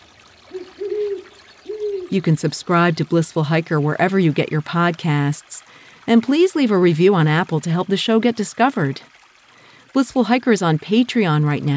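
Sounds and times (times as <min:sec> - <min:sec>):
faint trickle of a flowing stream at night: 0:00.0 - 0:11.7
owl hooting beside a flowing stream at night: 0:00.5 - 0:02.2
speech: 0:02.1 - 0:09.1, 0:10.0 - 0:11.7.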